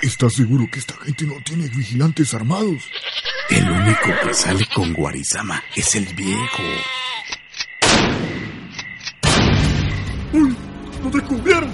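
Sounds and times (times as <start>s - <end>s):
speech: 0.0s - 7.3s, 11.0s - 11.7s
gunshots in a radio drama: 7.8s - 10.0s.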